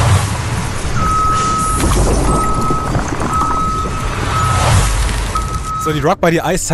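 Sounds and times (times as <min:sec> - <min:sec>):
tow truck heavy engine rumbling at a towing service: 0:00.0 - 0:06.7
tow truck reversing alarm beeps: 0:01.0 - 0:06.2
speech: 0:05.9 - 0:06.7.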